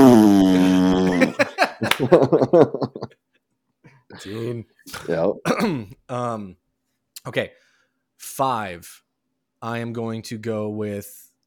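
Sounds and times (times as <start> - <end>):
cartoon fart gun effect blast: 0.0 - 1.3
snickering laughter: 0.4 - 3.1
speech: 2.0 - 3.2, 4.1 - 6.6, 7.2 - 7.6, 8.2 - 9.0, 9.6 - 11.2.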